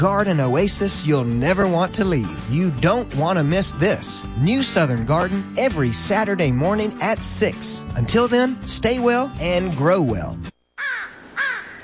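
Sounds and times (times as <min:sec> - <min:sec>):
speech: 0:00.0 - 0:10.5
American crow cawing: 0:10.8 - 0:11.8.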